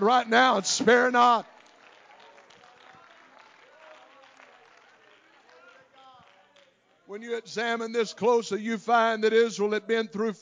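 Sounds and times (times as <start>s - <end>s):
speech: 0.0s - 1.5s, 7.1s - 10.3s
audience clapping: 0.2s - 7.1s.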